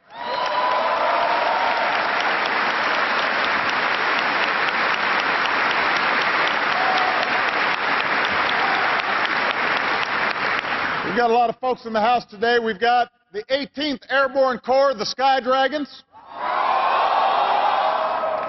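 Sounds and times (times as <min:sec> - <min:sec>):
large audience applause: 0:00.0 - 0:11.4, 0:16.4 - 0:18.4
speech: 0:11.2 - 0:16.6.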